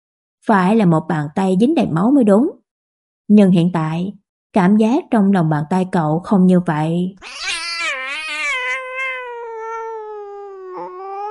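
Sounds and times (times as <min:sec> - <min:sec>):
speech: 0:00.4 - 0:02.6, 0:03.3 - 0:07.5
cat yowling miserably from inside a cupboard: 0:07.2 - 0:11.2.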